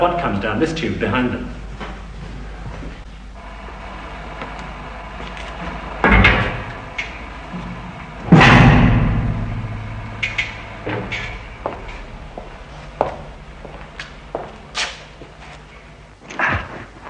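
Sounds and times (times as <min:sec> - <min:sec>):
speech: 0:00.0 - 0:01.6
heavy 6-inch steel blast door below a rocket base swinging shut: 0:06.0 - 0:07.2, 0:08.0 - 0:15.2.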